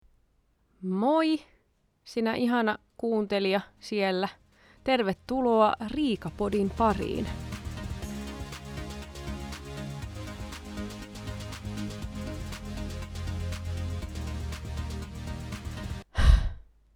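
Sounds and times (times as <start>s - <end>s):
speech: 0.8s - 1.5s, 2.1s - 7.5s
busy music: 4.4s - 16.0s
heavy breath blown into a microphone: 4.5s - 4.8s.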